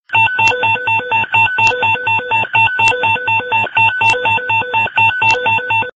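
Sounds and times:
fire dispatch tones: 0.1 - 5.9.

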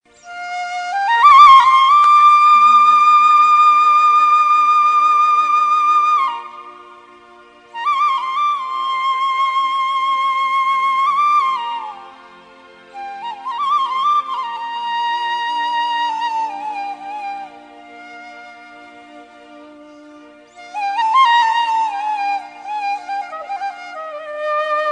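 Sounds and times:
flute playing: 0.0 - 24.9.

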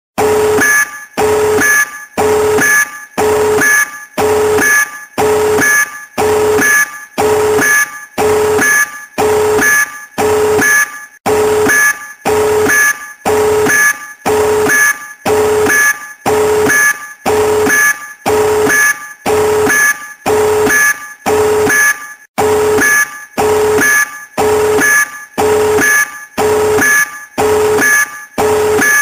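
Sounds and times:
tactical nuke alert alarm: 0.2 - 29.0.

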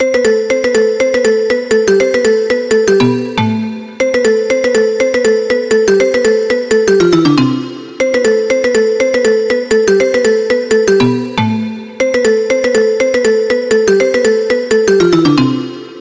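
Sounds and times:
high-pitched rhythm: 0.0 - 15.9.

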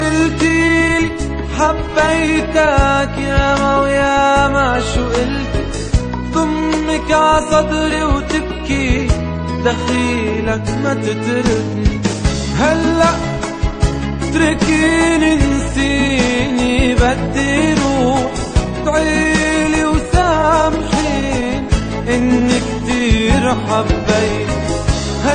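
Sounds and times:
sad Arabic song: 0.0 - 25.3.

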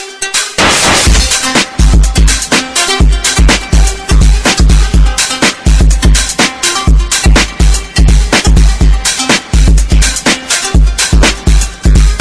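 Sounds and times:
bass guitar music: 0.6 - 12.1.

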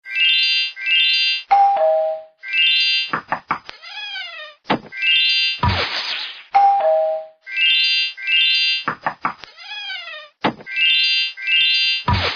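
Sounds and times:
ringtones: 0.0 - 3.4, 4.9 - 9.2, 10.6 - 12.3.

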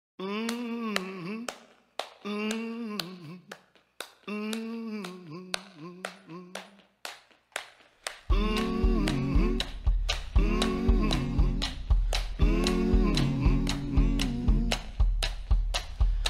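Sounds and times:
humming over a beat: 0.2 - 1.5, 4.3 - 6.8, 8.3 - 16.2.

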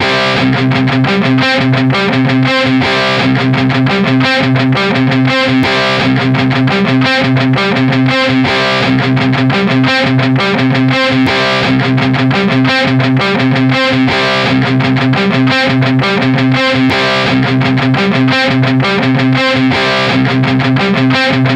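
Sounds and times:
rock guitar: 0.0 - 21.5.

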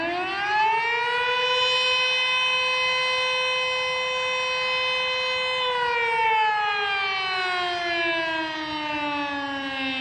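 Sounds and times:
fire station siren: 0.0 - 9.9.

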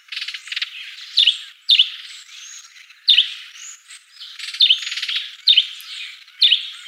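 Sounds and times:
quiet sparrow chatter: 0.0 - 6.8
sparrow chirping loudly: 0.1 - 6.8.

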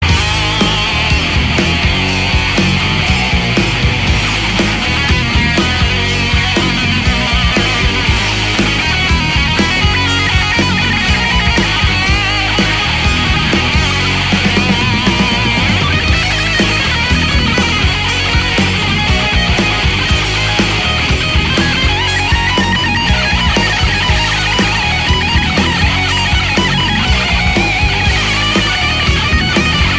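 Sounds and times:
rock guitar: 0.0 - 29.9.

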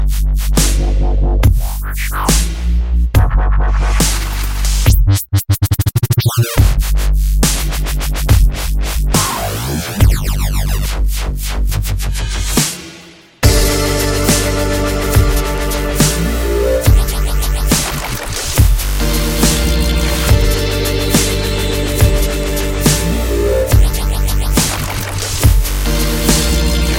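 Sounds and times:
dubstep beat: 0.0 - 26.9.

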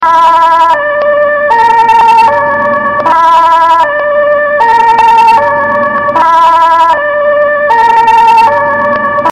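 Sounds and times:
Dutch ambulance siren: 0.0 - 9.3.

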